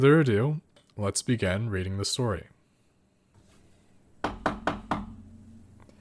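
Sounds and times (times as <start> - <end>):
speech: 0.0 - 2.5
knocking on a door: 4.2 - 5.2.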